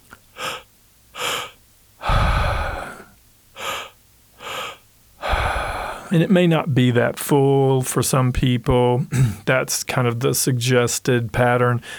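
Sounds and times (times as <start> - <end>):
two-part breathwork inhales through the mouth, low belly then high chest: 0.3 - 6.1
long rushing breathwork exhale: 1.2 - 6.1
speech: 6.1 - 11.9.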